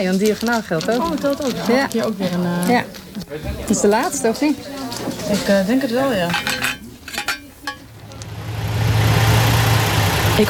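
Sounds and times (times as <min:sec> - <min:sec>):
speech: 0:00.0 - 0:06.7
bus engine running during a bus ride: 0:07.9 - 0:10.4.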